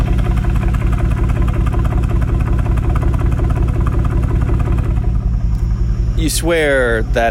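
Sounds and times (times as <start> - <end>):
old-school cross-plane V8 car engine idling: 0.0 - 7.2
speech: 6.2 - 7.2.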